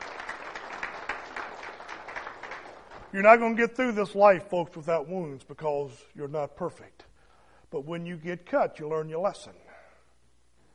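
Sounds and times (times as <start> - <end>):
church congregation clapping: 0.0 - 3.8
speech: 3.1 - 7.0, 7.7 - 9.6.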